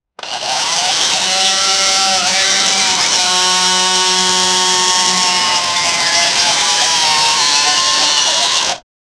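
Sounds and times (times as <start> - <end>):
electric scooter engine: 0.2 - 8.8.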